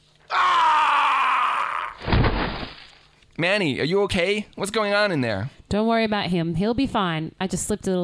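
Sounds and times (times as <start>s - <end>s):
scream reverberating through a house: 0.3s - 2.0s
speech: 3.4s - 8.0s.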